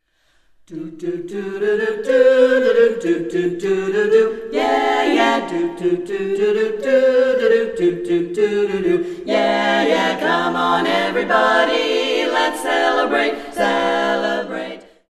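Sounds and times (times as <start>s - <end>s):
a cappella group singing: 0.7s - 15.0s.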